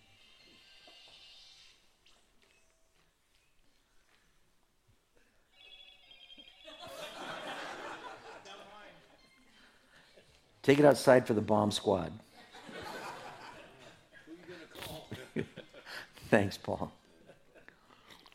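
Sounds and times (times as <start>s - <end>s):
mobile phone ringing in a room: 5.5s - 10.4s
laughter: 6.6s - 10.6s, 12.2s - 16.2s, 17.0s - 17.8s
speech: 10.6s - 12.2s, 16.3s - 17.0s.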